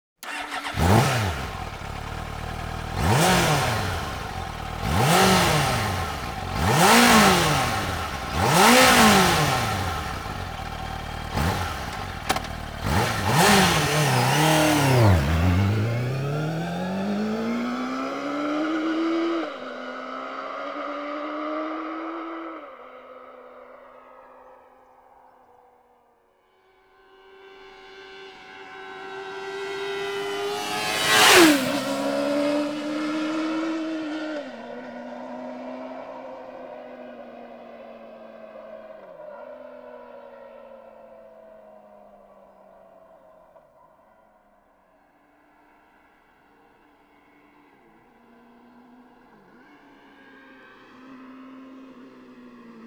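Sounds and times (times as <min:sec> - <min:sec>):
Suzuki GSX-R 750 motorcycle engine: 0:00.2 - 0:20.1, 0:28.1 - 0:35.2.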